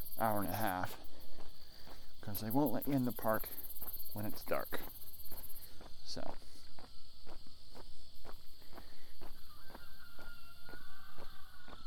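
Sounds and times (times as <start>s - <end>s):
constant high chirring of crickets: 0.0s - 11.8s
steady walking footsteps: 0.0s - 11.8s
speech: 0.2s - 1.1s, 2.3s - 5.1s, 6.1s - 6.5s
rooster crowing: 9.3s - 11.8s.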